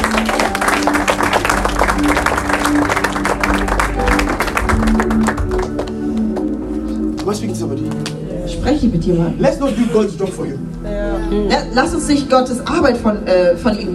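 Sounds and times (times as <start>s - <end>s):
audience clapping for a speaker: 0.0s - 8.3s
speech: 8.8s - 13.9s.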